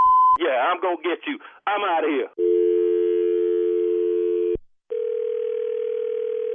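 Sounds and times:
speech: 0.5 - 2.5
telephone line dial tone: 2.4 - 6.5.

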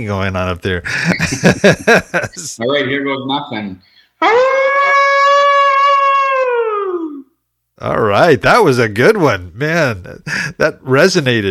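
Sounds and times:
speech: 0.0 - 4.8, 7.8 - 11.5
laughter: 0.9 - 2.6, 10.2 - 10.8
person imitating hound dog howl: 4.2 - 7.3.

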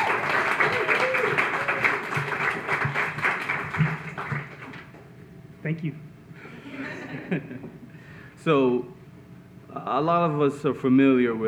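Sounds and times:
audience applauding a guest being introduced: 0.0 - 5.0
speech: 5.7 - 6.1, 7.2 - 7.8, 8.4 - 9.0, 9.8 - 11.4
laughter: 6.5 - 7.8.

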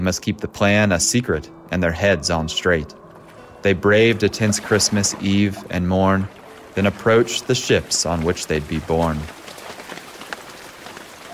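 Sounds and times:
speech: 0.0 - 3.0, 3.6 - 9.4
light rain falling: 6.3 - 11.3.

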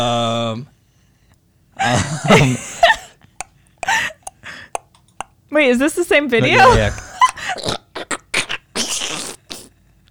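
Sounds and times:
speech: 0.0 - 0.8, 1.8 - 2.8, 5.6 - 7.8
voice imitating the squish of stepping on a tomato: 4.2 - 5.4, 7.6 - 9.8.

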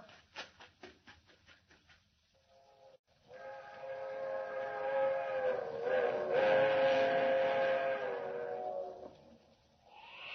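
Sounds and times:
fast train whistle blast for the highway: 3.4 - 8.7.

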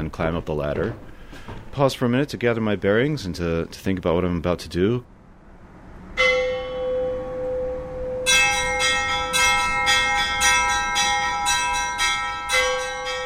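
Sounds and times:
speech: 0.0 - 5.1
church bells rung by hand in a church bell tower: 6.2 - 13.2.

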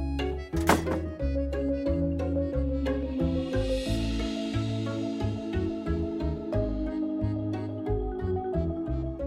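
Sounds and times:
steady musical bed: 0.0 - 9.2
door shutting with a thud: 0.6 - 1.1.

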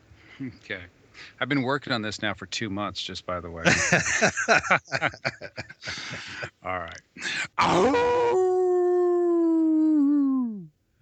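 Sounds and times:
speech: 0.4 - 8.4
laughter: 3.6 - 6.6
person imitating a hound dog howl: 7.6 - 10.7.

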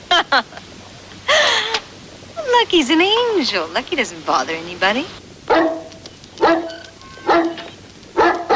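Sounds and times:
speech: 0.2 - 0.6, 2.6 - 5.7
dog barking: 5.5 - 8.5.

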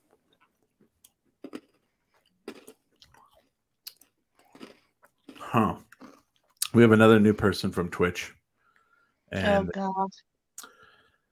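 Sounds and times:
chewing a crunchy snack: 0.1 - 6.7
speech: 5.5 - 5.8, 6.8 - 8.4, 9.3 - 10.3.

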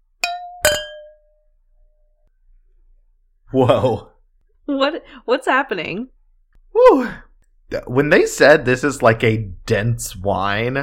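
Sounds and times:
wine glasses clinking in a toast: 0.2 - 1.4
speech: 3.5 - 4.1, 4.7 - 10.8.

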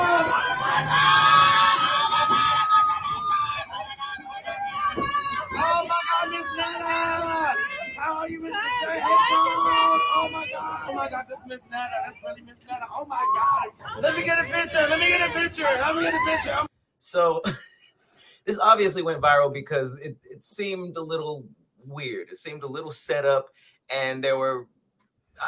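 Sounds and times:
crowd of excited fans screaming outside a hotel in New York: 0.0 - 11.2, 13.1 - 16.7
shouted talking: 0.0 - 16.7
speech: 15.8 - 17.6, 18.6 - 24.8.

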